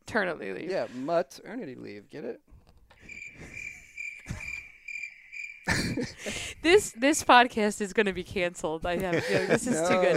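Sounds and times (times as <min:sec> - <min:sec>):
speech: 0:00.1 - 0:02.5, 0:05.8 - 0:10.1
crickets chirping in a high-pitched trill: 0:03.0 - 0:06.3
laughter: 0:05.7 - 0:06.6, 0:09.0 - 0:10.1.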